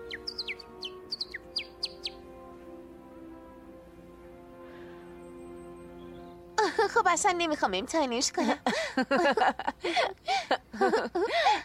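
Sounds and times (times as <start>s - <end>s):
high sparrow-like chirps and tweets: 0.0s - 2.2s
speech: 6.8s - 11.6s
laughter: 8.4s - 11.6s.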